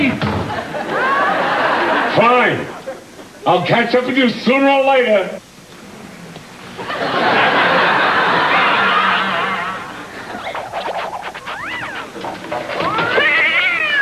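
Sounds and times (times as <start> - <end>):
laughter: 0.5 - 3.2, 6.8 - 12.0
speech: 3.4 - 5.4
cat yowling and meowing: 11.5 - 12.2, 12.8 - 13.9.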